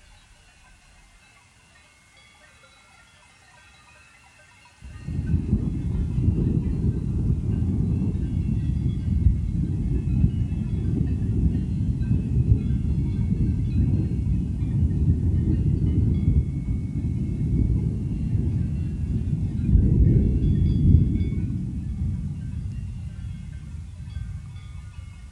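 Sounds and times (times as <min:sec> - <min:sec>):
faint steady high hiss: 0:00.0 - 0:07.4
thunder rolling rumble: 0:04.8 - 0:25.3.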